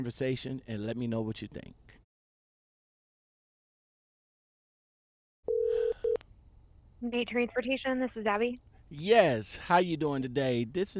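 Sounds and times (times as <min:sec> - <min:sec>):
speech: 0:00.0 - 0:02.0, 0:07.0 - 0:10.9
telephone line tone beeps as a call is placed to a transportation company: 0:05.5 - 0:06.2.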